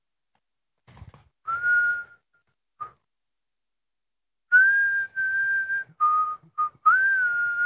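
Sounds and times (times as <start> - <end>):
person whistling a tune: 1.5 - 3.1, 4.5 - 7.6.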